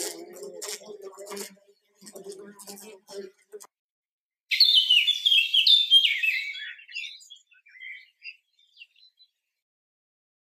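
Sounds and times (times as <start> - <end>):
birds chirping in spring: 4.5 - 9.6.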